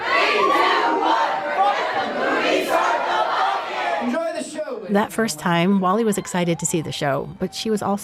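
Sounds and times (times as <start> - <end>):
theater audience chanting in unison before a movie: 0.0 - 4.9
speech: 4.9 - 8.0.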